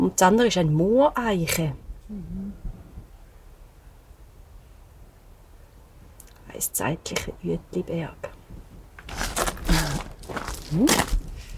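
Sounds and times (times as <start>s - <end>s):
speech: 0.0s - 2.4s, 6.6s - 8.4s, 10.7s - 11.1s
footsteps of people walking outdoors on a guided nature walk: 9.0s - 11.5s.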